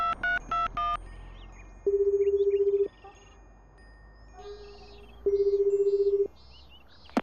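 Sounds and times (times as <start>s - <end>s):
telephone dialing beeps: 0.0s - 1.0s, 1.9s - 2.9s, 5.3s - 6.3s
birds chirping: 0.4s - 3.5s, 4.2s - 7.2s
telephone buzzing ring tones: 1.8s - 3.4s, 4.3s - 6.3s.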